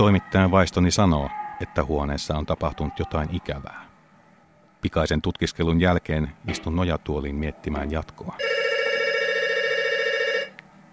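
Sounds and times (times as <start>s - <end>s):
speech: 0.0s - 3.9s, 4.8s - 8.7s
telephone bell ringing: 8.4s - 10.6s.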